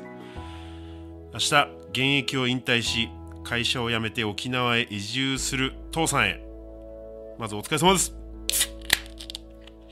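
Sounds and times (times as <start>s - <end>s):
speech: 1.4s - 6.4s, 7.4s - 8.7s
beer can being opened: 8.4s - 9.8s.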